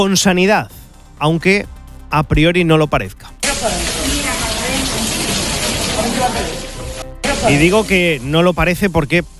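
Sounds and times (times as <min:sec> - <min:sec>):
speech: 0:00.0 - 0:04.2, 0:07.4 - 0:09.3
rainwater pouring and splashing inside a flooded maternity hospital in Badajoz Spain: 0:03.4 - 0:09.3.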